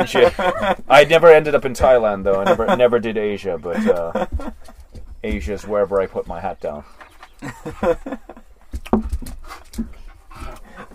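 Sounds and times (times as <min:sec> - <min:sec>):
laughter: 0:00.0 - 0:01.0, 0:02.0 - 0:05.0, 0:07.4 - 0:08.6
speech: 0:00.0 - 0:10.6
dog panting: 0:09.2 - 0:10.9.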